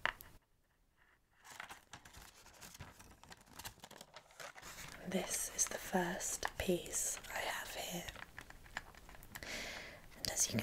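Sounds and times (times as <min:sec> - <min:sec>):
tissue paper wrapping jewellery in a gift box crinkling: 0:01.3 - 0:09.2
speech: 0:05.1 - 0:07.2, 0:10.4 - 0:10.6.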